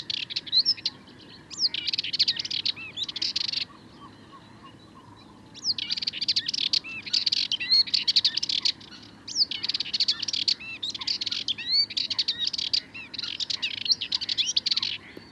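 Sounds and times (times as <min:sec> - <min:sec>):
Sardinian warbler song at twilight in the Camargue: 0:00.0 - 0:15.2.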